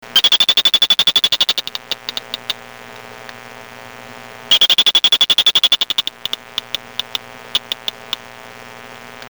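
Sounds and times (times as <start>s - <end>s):
P vittatus warning call: 0.1s - 2.6s, 4.5s - 8.4s.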